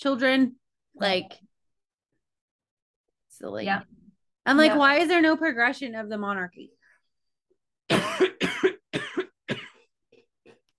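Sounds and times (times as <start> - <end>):
speech: 0.0 - 1.5, 3.4 - 6.8
harsh wet coughing: 7.9 - 10.6.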